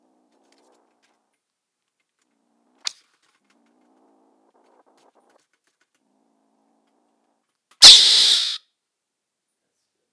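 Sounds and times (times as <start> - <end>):
mongoose hissing: 7.8 - 8.6.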